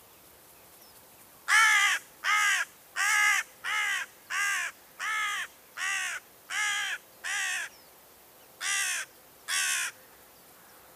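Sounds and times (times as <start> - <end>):
carrion crow Corvus corone calling with harsh rasping caws: 1.5 - 7.7, 8.6 - 10.0.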